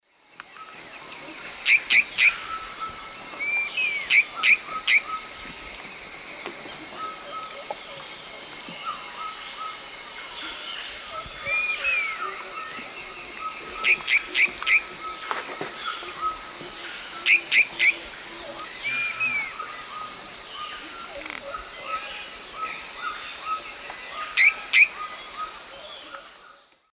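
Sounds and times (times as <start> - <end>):
Tyranneutes stolzmanni call: 0.6 - 5.3, 10.4 - 26.4.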